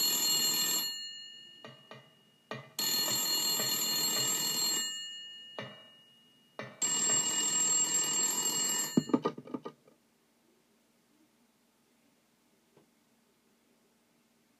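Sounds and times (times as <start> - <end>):
telephone bell ringing: 0.0 - 9.4.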